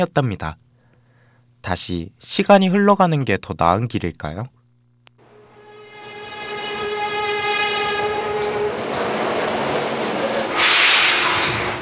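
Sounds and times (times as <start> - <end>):
speech: 0.0 - 0.6, 1.6 - 4.6
horn-like tonal blast of a subway train: 5.2 - 11.8
subway train passing through a station in front of city hall: 5.2 - 11.8.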